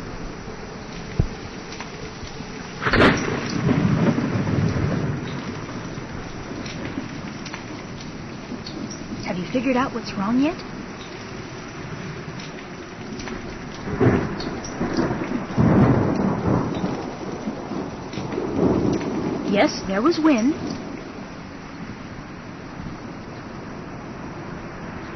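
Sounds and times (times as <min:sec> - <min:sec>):
steady sizzling crackle of frying bacon standing in for rain: 0:00.0 - 0:25.1
loud rolls of thunder: 0:02.7 - 0:09.6, 0:13.4 - 0:24.6
speech: 0:09.5 - 0:10.8, 0:19.6 - 0:20.7.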